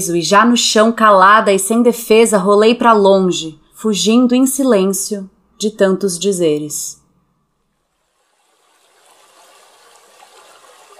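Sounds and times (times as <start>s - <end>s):
speech: 0.0s - 7.0s
water trickling in a small shallow river: 8.0s - 10.9s.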